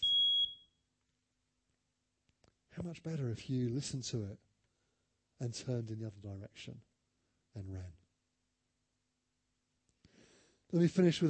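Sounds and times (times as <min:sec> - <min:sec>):
shrill electronic alarm beep: 0:00.0 - 0:00.8
speech: 0:02.8 - 0:04.4, 0:05.4 - 0:06.9, 0:07.6 - 0:08.0, 0:10.7 - 0:11.2.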